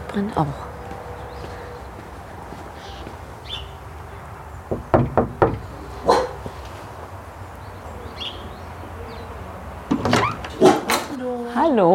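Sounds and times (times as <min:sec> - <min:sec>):
faint birds outdoors: 0:00.0 - 0:10.7
speech: 0:00.2 - 0:00.7
knocking or door sounds: 0:04.7 - 0:05.7
dog barking at the door: 0:06.0 - 0:06.5, 0:10.6 - 0:10.9.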